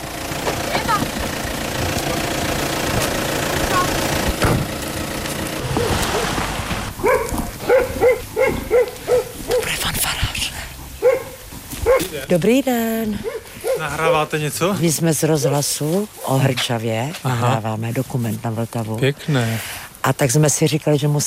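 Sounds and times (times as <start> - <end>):
German car arriving and engine idling in a village centre: 0.0 - 12.6
dog barking sharply in a village centre: 7.0 - 9.8, 11.0 - 12.1, 13.2 - 14.3
speech: 12.3 - 21.2.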